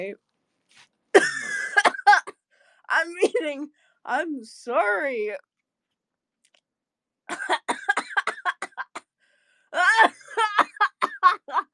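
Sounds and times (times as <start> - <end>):
speech: 0.0 - 1.4, 2.9 - 5.5
harsh wet coughing fit: 1.1 - 2.4, 7.3 - 9.1, 9.8 - 11.7.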